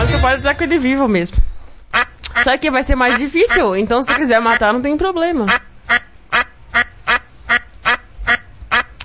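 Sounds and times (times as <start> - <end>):
speech: 0.2 - 5.6
live duck quacking: 1.9 - 4.8, 5.4 - 9.0.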